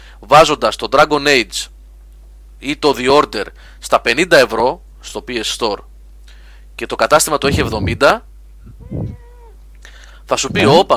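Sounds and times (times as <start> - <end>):
low steady hum: 0.0 - 10.9
speech: 0.2 - 1.7, 2.6 - 5.9, 6.8 - 9.2, 10.3 - 10.9
cat meowing: 8.7 - 9.6.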